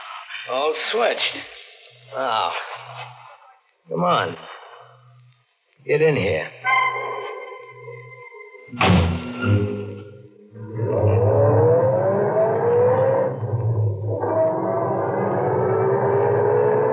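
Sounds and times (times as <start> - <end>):
speech: 0.5 - 1.6, 2.1 - 3.1, 3.9 - 4.5, 5.8 - 6.8, 8.7 - 9.6
thump: 8.8 - 9.6
car engine roar pulling away from a service station at night: 10.6 - 16.9.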